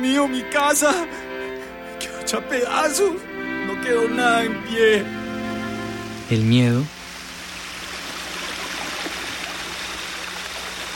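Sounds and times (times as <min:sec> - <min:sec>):
speech: 0:00.0 - 0:01.3, 0:02.3 - 0:05.2, 0:06.3 - 0:07.0
water rushing into a house: 0:03.5 - 0:10.9.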